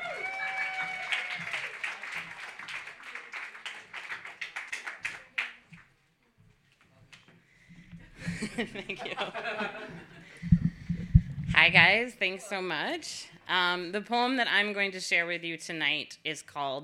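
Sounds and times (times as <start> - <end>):
audience clapping to welcome a poet to the stage: 0.0 - 5.9
laughter: 8.0 - 10.6
speech: 8.4 - 10.6, 11.6 - 16.8.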